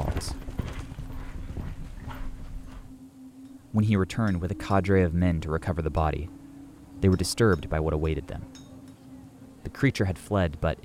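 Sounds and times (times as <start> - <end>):
horse spurred by its rider galloping with thudding hooves: 0.0 - 2.9
speech: 3.7 - 6.4, 7.0 - 8.7, 9.6 - 10.8.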